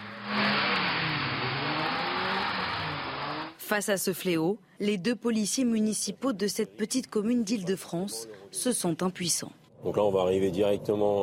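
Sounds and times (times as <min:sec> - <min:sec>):
car engine revving hard while drifting: 0:00.0 - 0:03.6
tires skidding on pavement: 0:00.0 - 0:03.6
speech: 0:03.7 - 0:11.2.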